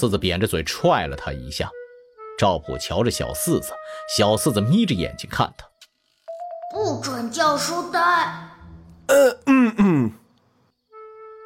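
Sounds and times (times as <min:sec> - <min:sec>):
speech: 0:00.0 - 0:01.8, 0:02.4 - 0:05.7, 0:06.7 - 0:10.2
man coughing and clearing his throat awkwardly: 0:09.1 - 0:10.2.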